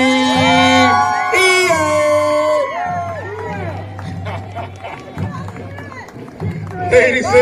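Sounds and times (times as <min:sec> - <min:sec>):
whoops and shouting voices: 0:00.0 - 0:03.8
crowd cheering for a cadet regiment: 0:00.0 - 0:07.4
laughter: 0:03.4 - 0:06.1
speech: 0:06.9 - 0:07.4.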